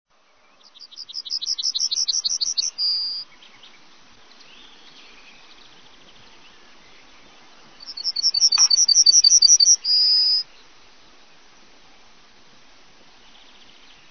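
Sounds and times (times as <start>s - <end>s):
yellowhammer singing: 0.2s - 10.8s.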